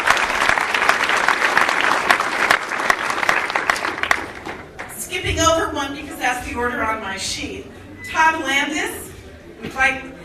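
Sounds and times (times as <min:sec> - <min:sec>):
crowd applauding a speaker at a public meeting: 0:00.0 - 0:05.0
speech: 0:06.6 - 0:09.0, 0:09.6 - 0:10.2.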